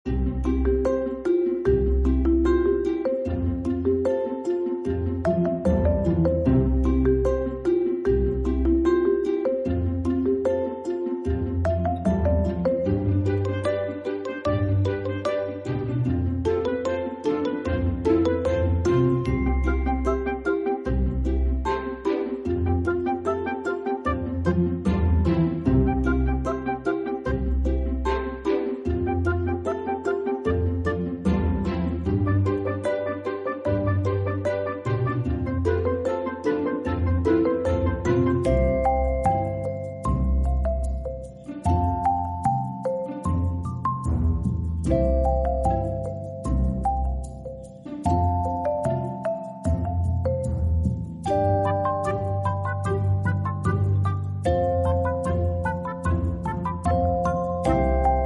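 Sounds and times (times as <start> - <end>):
main background music track: 0.0 - 58.2.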